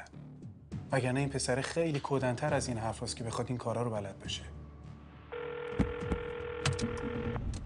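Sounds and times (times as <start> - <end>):
speech: 0.9 - 4.6
mobile phone ringtone for an incoming call: 5.3 - 7.4.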